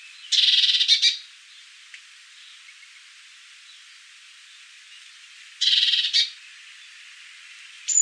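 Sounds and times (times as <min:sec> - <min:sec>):
great tit rasping feeding calls while feeding its young: 0:00.3 - 0:01.2, 0:05.6 - 0:06.4.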